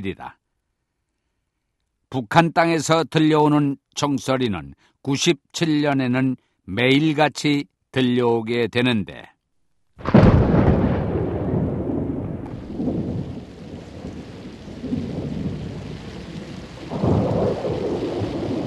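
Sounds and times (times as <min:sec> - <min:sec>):
speech: 0:00.0 - 0:00.4, 0:02.1 - 0:09.3
summer thunderstorm thunder crash rolling into long rumbles: 0:10.0 - 0:18.6
heavy pouring rain in a summer thunderstorm: 0:12.4 - 0:18.6.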